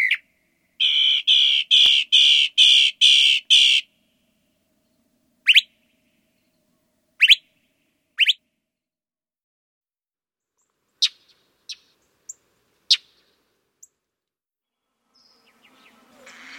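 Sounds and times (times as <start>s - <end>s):
Northern mockingbird song: 0.0s - 3.9s, 4.9s - 7.6s, 8.2s - 8.4s, 10.6s - 14.0s, 15.1s - 16.5s.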